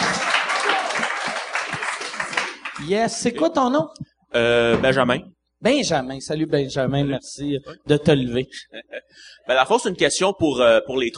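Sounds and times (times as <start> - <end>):
audience applause at a comedy Q&A: 0.0 - 3.0
speech: 2.8 - 11.1.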